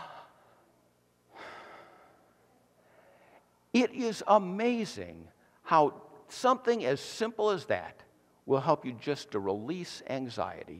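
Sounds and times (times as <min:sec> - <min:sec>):
deep breath: 0:01.3 - 0:03.5
speech: 0:03.8 - 0:10.7.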